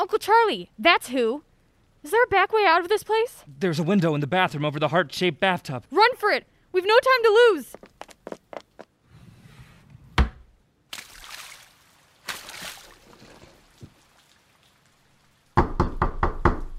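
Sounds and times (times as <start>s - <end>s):
speech: 0.1s - 7.9s
water-like noise: 10.9s - 15.6s
pounding on a locked door: 15.6s - 16.7s.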